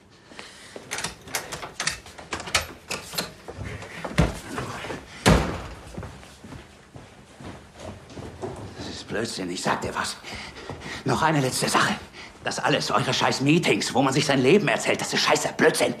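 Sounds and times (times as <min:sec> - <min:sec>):
heavy loud door slams: 0:05.2 - 0:05.9
speech: 0:09.2 - 0:15.9.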